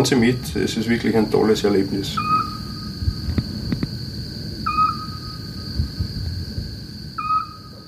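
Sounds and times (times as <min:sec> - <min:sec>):
speech: 0:00.0 - 0:02.5
low rumble: 0:00.0 - 0:07.8
Eurasian pygmy owl singing whistled hoots: 0:02.1 - 0:03.0, 0:04.6 - 0:05.7, 0:07.2 - 0:07.8.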